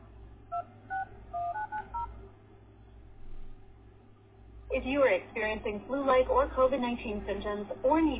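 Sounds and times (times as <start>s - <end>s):
telephone keypad touch tones entering digits into an automated healthcare phone menu: 0.5s - 2.1s
speech: 4.7s - 8.1s.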